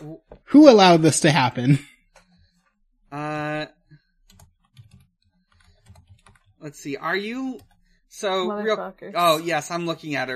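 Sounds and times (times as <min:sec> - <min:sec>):
speech: 0:00.5 - 0:01.9, 0:06.6 - 0:10.3
typing on a computer keyboard: 0:04.2 - 0:07.8.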